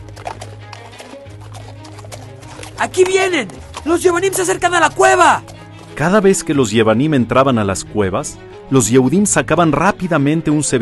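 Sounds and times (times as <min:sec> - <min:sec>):
horses galloping with hooves clip-clopping: 0:00.0 - 0:06.7
speech: 0:02.8 - 0:10.8.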